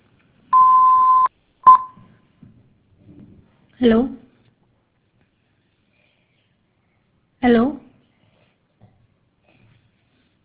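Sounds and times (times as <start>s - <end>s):
telephone keypad tone from pressing the hash key on an automated line: 0.6s - 1.9s
speech: 3.8s - 4.2s, 7.4s - 7.8s.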